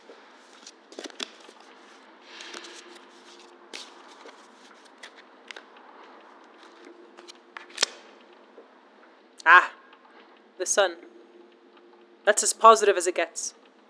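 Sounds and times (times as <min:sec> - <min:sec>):
deck of cards being shuffled: 0:00.0 - 0:08.2
speech: 0:10.6 - 0:11.1, 0:12.3 - 0:13.6.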